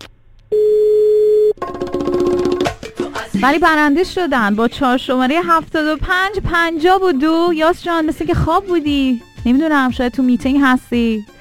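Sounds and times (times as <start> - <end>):
steady electronic phone ringback tone: 0.5 - 2.6
speech: 3.4 - 11.3.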